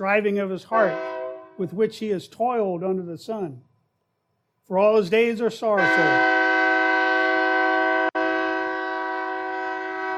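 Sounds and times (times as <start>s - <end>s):
speech: 0.0s - 3.7s, 4.7s - 6.4s
passing train horn blaring in a long steady chord: 0.7s - 1.6s, 5.8s - 10.1s.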